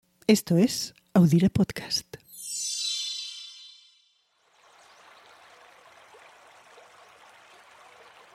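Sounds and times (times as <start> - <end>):
speech: 0.3 - 2.2
bright ringing chime: 2.3 - 4.3
Duero River water flowing in the province of Valladolid: 4.4 - 8.3.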